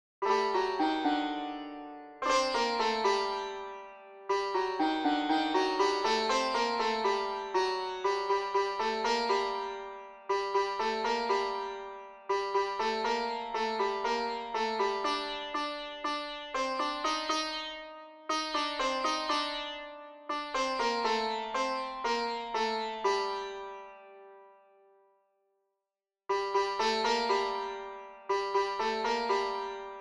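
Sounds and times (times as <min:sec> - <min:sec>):
santoor: 0:00.2 - 0:25.1, 0:26.3 - 0:29.9.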